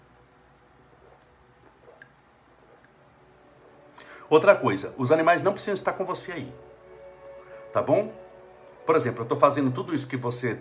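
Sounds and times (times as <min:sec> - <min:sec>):
person drinking water with soft wet sips: 0:00.9 - 0:03.0
faint swallowing clicks: 0:01.0 - 0:03.0
speech: 0:04.3 - 0:06.7, 0:07.7 - 0:08.2, 0:08.9 - 0:10.5.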